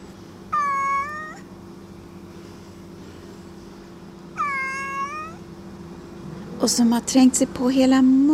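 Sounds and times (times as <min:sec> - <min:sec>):
domestic cat meowing: 0:00.5 - 0:01.5, 0:04.4 - 0:05.4
speech: 0:06.6 - 0:08.3.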